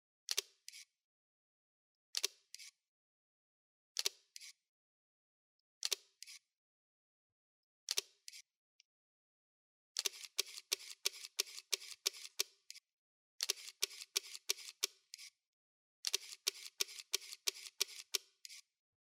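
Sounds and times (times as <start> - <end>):
GFX 50R camera: 0.3 - 1.0, 2.1 - 2.8, 4.0 - 4.6, 5.8 - 6.5, 7.9 - 8.5, 10.0 - 15.4, 16.0 - 18.8.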